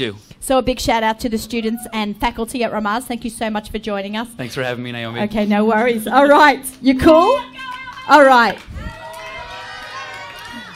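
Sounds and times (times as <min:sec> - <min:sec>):
speech: 0:00.0 - 0:08.8
family members cheering: 0:07.2 - 0:10.7.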